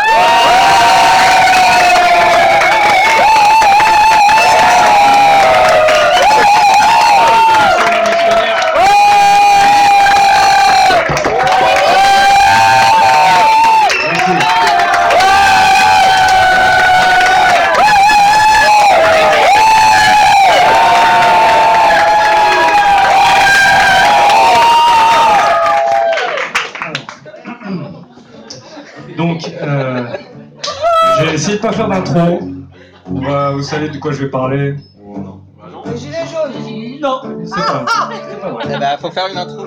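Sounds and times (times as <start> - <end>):
large audience at a goguette singing event cheering and shouting: 0.0 - 26.6
laughter: 26.8 - 31.2, 32.7 - 33.4, 37.6 - 39.6
speech: 31.6 - 32.4, 33.6 - 34.9, 37.5 - 39.6.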